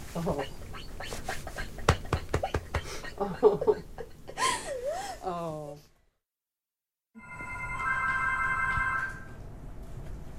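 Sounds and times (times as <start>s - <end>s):
speech: 0.2s - 0.6s, 3.2s - 3.9s
laughter: 1.2s - 4.7s
telephone ringing: 7.2s - 9.4s.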